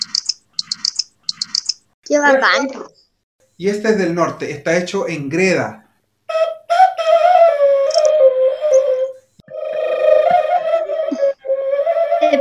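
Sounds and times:
speech: 2.1 - 3.0, 3.6 - 5.8
clay bird-call whistle trilling, imitating birdsong: 6.3 - 12.3.

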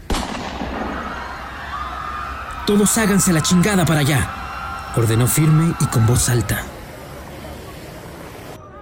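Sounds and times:
pistol shot fired into the air with tail: 0.0 - 1.1
speech: 2.7 - 4.4, 5.0 - 6.7.

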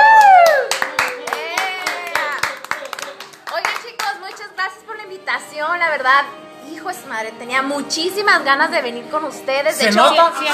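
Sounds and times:
tonal whoops: 0.0 - 2.4
audience applause: 0.0 - 4.4
music: 0.2 - 10.5
speech: 5.9 - 10.5.

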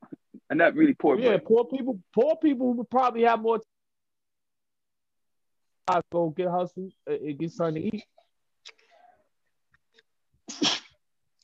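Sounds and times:
speech: 0.5 - 3.7, 5.9 - 8.1
person sneezing: 10.5 - 11.0.

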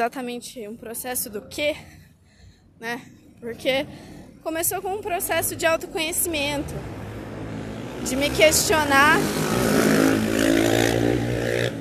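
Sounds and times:
speech: 0.0 - 2.0, 2.8 - 6.9, 8.0 - 9.8
loud motorcycle engine revving and passing by: 6.0 - 11.8.

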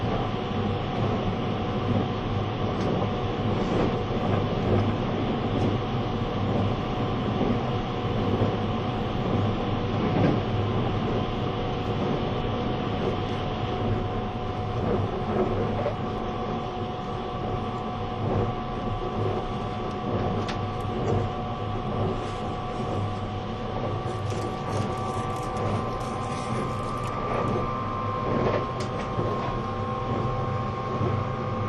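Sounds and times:
E257 series train rumbling: 0.0 - 31.6
mid-pitched train motor whine: 23.0 - 31.6.

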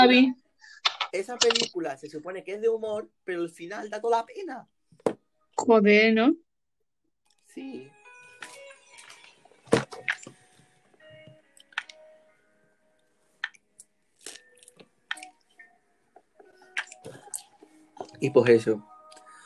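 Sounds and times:
speech: 0.0 - 0.4, 1.1 - 6.5, 7.6 - 8.6, 18.2 - 18.9
wet chewing of strawberries: 14.2 - 15.3.

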